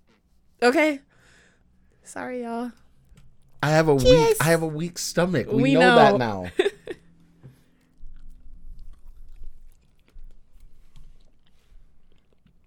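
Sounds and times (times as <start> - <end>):
speech: 0.6 - 1.1, 2.1 - 2.8, 3.6 - 6.7
chewing spicy food with crunchy bites and wet mouth sounds: 7.6 - 12.6.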